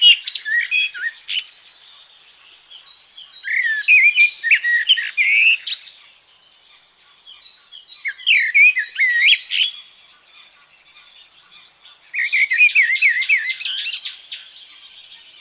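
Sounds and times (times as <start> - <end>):
Common blackbird song: 0.0 - 15.3.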